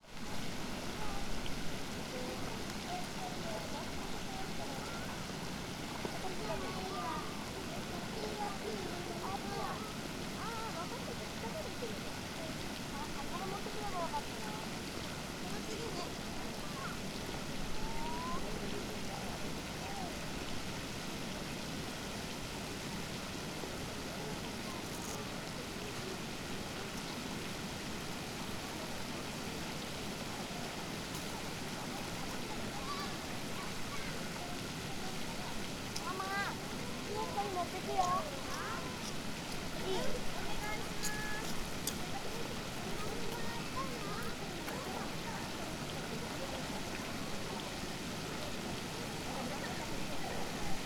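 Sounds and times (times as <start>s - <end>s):
pond ambience: 0.0s - 50.8s.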